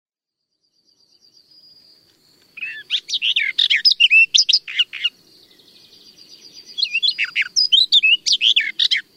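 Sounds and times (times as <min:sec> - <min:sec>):
barred warbler singing: 0:00.4 - 0:09.1.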